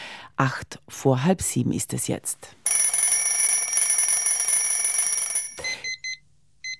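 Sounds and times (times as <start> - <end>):
speech: 0.4 - 2.8
alarm clock ringing with a shrill tone: 2.7 - 6.2.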